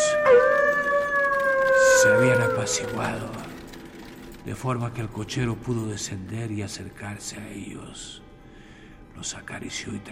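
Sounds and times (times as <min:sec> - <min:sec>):
long sustained howl: 0:00.0 - 0:04.2
speech: 0:02.0 - 0:03.6, 0:04.4 - 0:08.2, 0:09.2 - 0:10.1.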